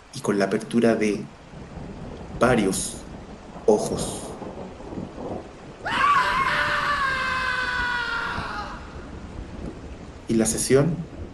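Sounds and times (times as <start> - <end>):
rain hiss: 0.0 - 11.3
speech: 0.1 - 1.4, 2.4 - 3.0, 3.7 - 4.3, 10.3 - 11.1
low rumbling: 1.3 - 11.3
man screaming: 5.8 - 9.2.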